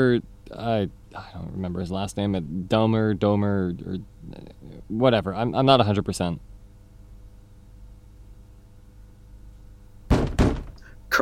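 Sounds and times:
speech: 0.0 - 6.5
heavy knocking on a door: 10.1 - 10.8.

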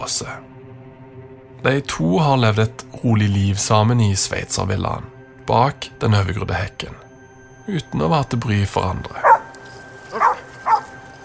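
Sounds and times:
speech: 0.0 - 1.0, 1.6 - 7.1, 7.7 - 9.3
police dog barking short sharp woofs: 9.2 - 11.0.

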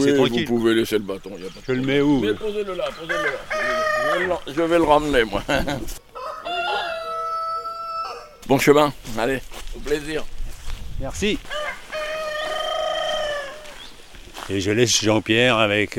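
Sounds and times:
speech: 0.0 - 6.1, 8.5 - 10.4, 11.0 - 11.6, 14.5 - 15.9
rooster crowing: 3.0 - 4.5, 6.1 - 8.4, 11.4 - 13.9
laughter: 5.1 - 6.0.

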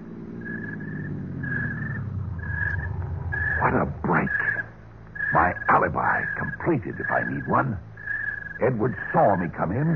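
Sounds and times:
car engine rumbling as a vehicle drives up: 0.0 - 9.9
thin high whine: 1.4 - 7.5
speech: 5.4 - 7.9, 8.6 - 9.9.

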